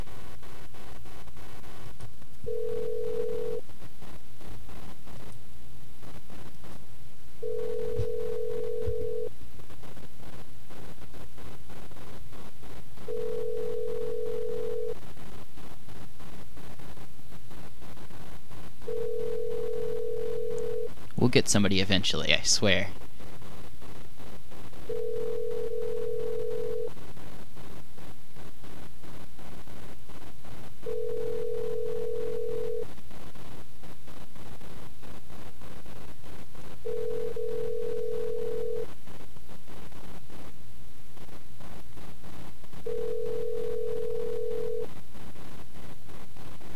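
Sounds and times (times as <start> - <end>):
low hum: 0.0 - 15.3, 16.0 - 28.0, 30.8 - 32.9, 36.8 - 41.8, 42.7 - 46.7
telephone ringback tone while calling: 2.5 - 3.6, 7.4 - 9.3, 13.1 - 15.0, 18.9 - 20.9, 24.9 - 26.9, 30.9 - 32.8, 36.9 - 38.8, 42.9 - 44.9
speech: 21.4 - 23.0.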